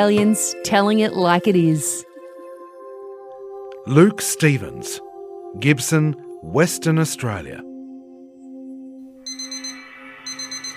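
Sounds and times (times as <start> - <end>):
speech: 0.0 - 2.1, 3.9 - 7.7
alarm clock with rapid high electronic beeps: 9.3 - 10.7.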